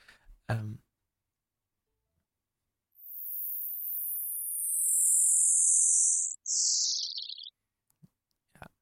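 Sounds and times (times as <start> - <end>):
speech: 0.5 - 0.9
neutron star radio signal converted to sound as piercing high whistle: 3.1 - 7.5.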